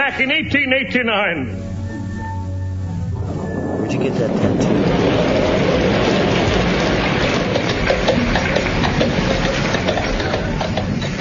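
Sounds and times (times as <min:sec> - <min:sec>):
speech: 0:00.1 - 0:01.7, 0:03.8 - 0:05.4
low rumble of a mountain storm: 0:01.7 - 0:11.0
wind gusts: 0:02.7 - 0:11.1
driving rain in a mountain storm in the Dolomites: 0:03.0 - 0:11.1.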